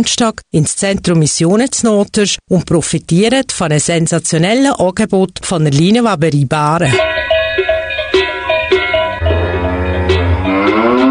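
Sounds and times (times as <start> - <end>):
speech: 0.0 - 7.1
cowbell clanging: 6.9 - 11.0
cow mooing: 9.0 - 11.0.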